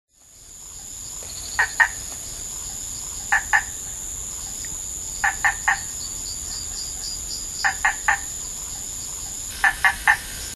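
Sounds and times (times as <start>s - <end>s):
Boophis opisthodon frog calling: 1.5s - 2.0s, 2.6s - 10.3s.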